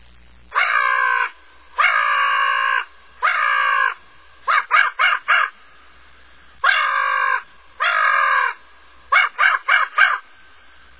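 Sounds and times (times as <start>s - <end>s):
crow cawing: 0.6s - 5.7s, 6.6s - 10.5s.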